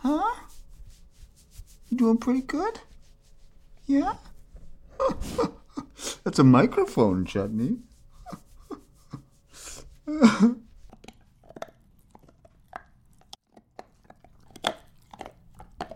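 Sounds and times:
speech: 2.0 - 2.9, 3.9 - 4.3, 6.3 - 7.9, 10.1 - 10.6
light cream golden retriever chewing on a hard nylon bone: 10.8 - 15.9.

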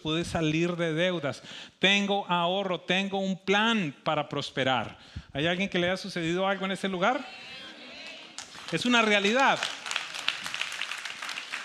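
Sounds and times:
speech: 0.0 - 7.6, 8.7 - 9.8
light polite audience applause: 8.0 - 11.6.

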